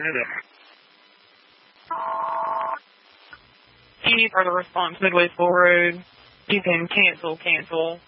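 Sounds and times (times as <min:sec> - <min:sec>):
speech: 0:00.0 - 0:00.6, 0:04.1 - 0:08.0
faint hiss: 0:00.0 - 0:08.0
single steady electronic telephone tone: 0:01.9 - 0:02.8.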